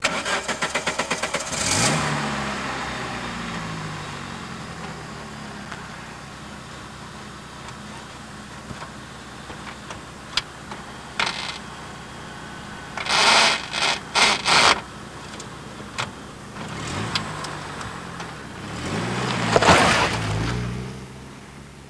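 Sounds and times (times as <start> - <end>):
cars starting: 0.0 - 5.5, 9.6 - 11.6, 12.9 - 21.4.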